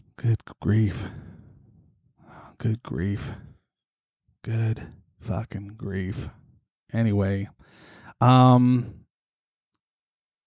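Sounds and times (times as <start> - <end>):
speech: 0.2 - 1.2, 2.6 - 3.5, 4.4 - 9.0
heavy breathing into the microphone: 0.9 - 2.6, 7.6 - 8.2.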